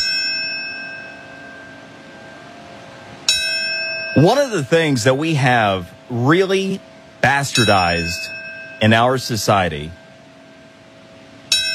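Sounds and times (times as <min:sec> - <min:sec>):
bell ringing at a memorial ceremony: 0:00.0 - 0:02.7, 0:03.3 - 0:05.7, 0:07.2 - 0:10.2, 0:11.5 - 0:11.7
speech: 0:04.2 - 0:10.0.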